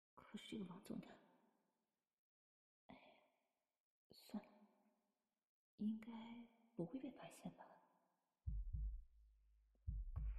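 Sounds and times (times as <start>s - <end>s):
speech: 0.3s - 1.2s, 4.1s - 4.5s, 5.8s - 7.8s
fast heartbeat sound effect thumps: 8.5s - 9.0s, 9.9s - 10.3s.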